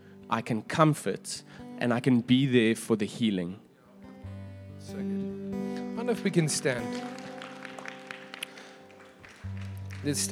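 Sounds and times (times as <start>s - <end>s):
speech: 0.3s - 3.6s, 4.8s - 5.3s, 6.0s - 7.2s, 10.0s - 10.3s
audience clapping: 6.4s - 10.3s.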